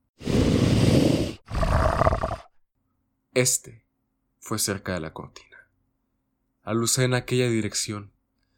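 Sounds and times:
deep monstrous growl from a creature the size of an adult wolf: 0.3 - 2.5
speech: 3.4 - 3.8, 4.4 - 5.5, 6.6 - 8.2.

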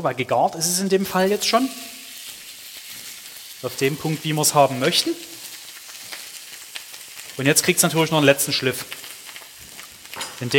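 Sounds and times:
speech: 0.0 - 2.0, 3.6 - 5.3, 7.4 - 9.0, 10.4 - 10.5
two cooked steaks searing in a hot pan with foamed fat: 0.4 - 10.5.

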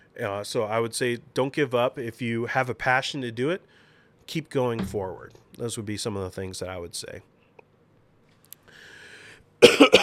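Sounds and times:
faint hum: 0.0 - 10.0
speech: 0.2 - 7.3
harsh coughs: 9.6 - 10.0.

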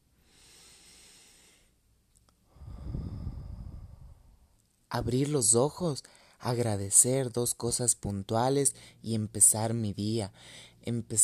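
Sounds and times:
slow deep breathing: 0.2 - 1.8, 2.4 - 4.5, 6.0 - 6.4, 10.3 - 10.8
speech: 4.9 - 11.2.

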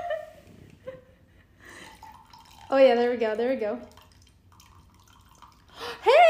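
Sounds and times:
faint dripping: 1.7 - 6.1
thin stream of liquid pouring from a kitchen measuring cup onto a spoon: 1.8 - 2.8, 3.8 - 5.8
speech: 2.8 - 3.9.

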